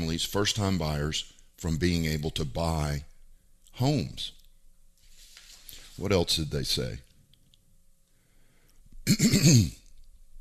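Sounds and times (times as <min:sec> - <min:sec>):
speech: 0:00.2 - 0:03.1, 0:03.8 - 0:04.4, 0:06.0 - 0:07.0, 0:09.1 - 0:09.8
throat clearing: 0:09.0 - 0:09.9.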